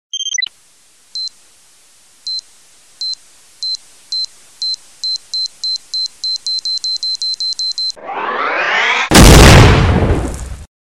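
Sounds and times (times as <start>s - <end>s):
3D bomb blast ringtone: 8.0s - 10.7s.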